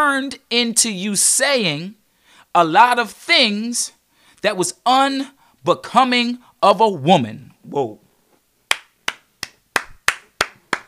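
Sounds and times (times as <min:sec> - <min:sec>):
speech: 0:00.0 - 0:02.0, 0:02.6 - 0:08.0
hand claps: 0:08.7 - 0:10.8.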